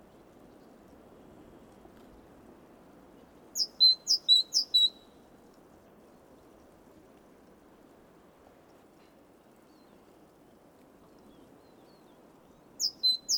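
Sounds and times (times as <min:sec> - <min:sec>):
low hiss: 0:00.0 - 0:13.3
Parus major giving ringing two-note phrases: 0:03.6 - 0:05.0, 0:12.8 - 0:13.3.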